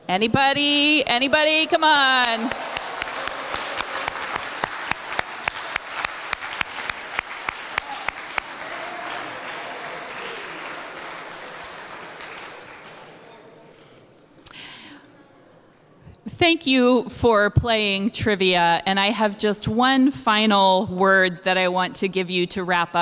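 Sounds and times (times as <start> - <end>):
speech: 0.1 - 2.7, 16.4 - 23.0
crowd applauding: 1.5 - 13.5.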